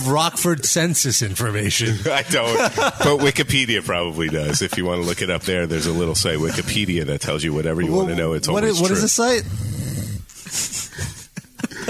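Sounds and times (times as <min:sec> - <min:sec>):
speech: 0:00.0 - 0:09.8
laughter: 0:01.8 - 0:07.1, 0:10.5 - 0:11.8
wheezy snoring: 0:09.4 - 0:10.3.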